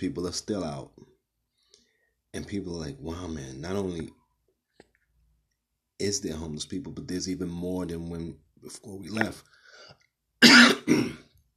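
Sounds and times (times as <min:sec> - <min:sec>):
speech: 0:00.0 - 0:01.1, 0:02.3 - 0:04.2, 0:06.0 - 0:11.3
person coughing and clearing throat after choking on trail mix: 0:10.4 - 0:11.4.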